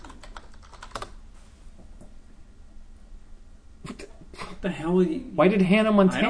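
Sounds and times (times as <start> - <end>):
typing on a computer keyboard: 0.0 - 1.2
speech: 4.6 - 6.2.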